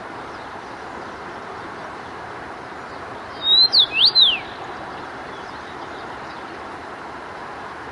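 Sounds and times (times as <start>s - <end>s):
steady background hiss: 0.0s - 7.9s
common rosefinch whistled song in Zakole Wawerskie Warsaw: 2.9s - 6.5s.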